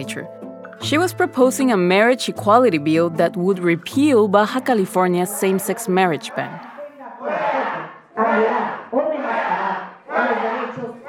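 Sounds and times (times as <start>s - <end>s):
speech: 0.0s - 6.7s
crowd chanting in the Baja California state legislature: 5.2s - 11.0s.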